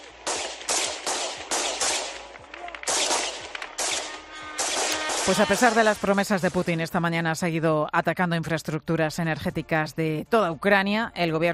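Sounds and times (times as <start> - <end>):
police gunfire at drones outdoors: 0.0 - 6.8
speech: 5.3 - 11.5.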